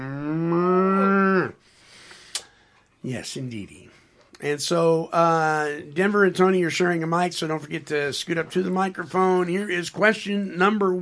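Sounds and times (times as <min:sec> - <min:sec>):
cow mooing: 0:00.0 - 0:01.6
speech: 0:03.0 - 0:11.0.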